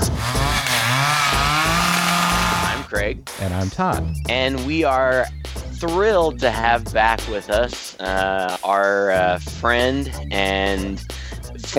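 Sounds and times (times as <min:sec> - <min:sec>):
chainsaw engine revving: 0:00.0 - 0:02.9
speech: 0:03.0 - 0:11.1.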